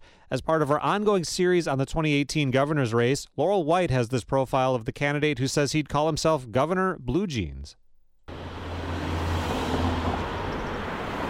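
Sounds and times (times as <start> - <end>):
speech: 0.3 - 7.8
cars speeding past on a busy street: 8.3 - 11.2
traffic roar on a busy street in Madison: 8.3 - 11.2.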